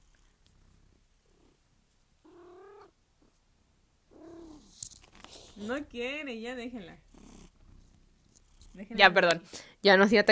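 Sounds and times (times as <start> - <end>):
annoyed cat meowing: 2.3 - 2.9
speech: 5.6 - 7.1, 8.8 - 10.3.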